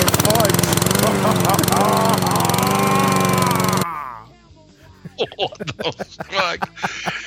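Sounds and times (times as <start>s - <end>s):
lawn mower engine running: 0.0s - 3.8s
laughter: 0.6s - 7.2s
speech: 5.6s - 7.2s.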